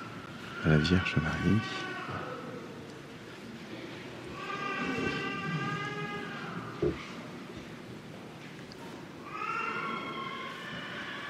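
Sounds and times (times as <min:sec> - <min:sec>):
young children crying in a basilica: 0:00.0 - 0:02.9, 0:04.2 - 0:07.0, 0:09.2 - 0:11.2
steady room murmur in a basilica: 0:00.0 - 0:11.2
speech: 0:00.6 - 0:02.2.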